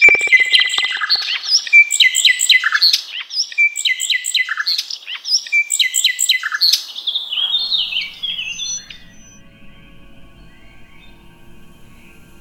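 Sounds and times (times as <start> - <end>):
nightingale singing: 0.0 - 9.5.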